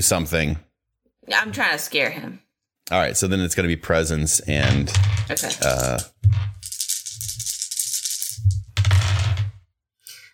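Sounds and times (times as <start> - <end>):
speech: 0.0 - 7.5
dice rattling and clattering across a hard surface in a game: 4.6 - 9.6.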